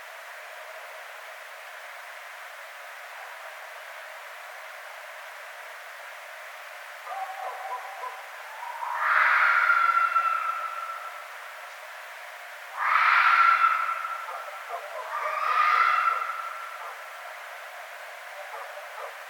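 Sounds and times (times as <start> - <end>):
red fox screams: 8.6 - 11.2, 12.8 - 17.0.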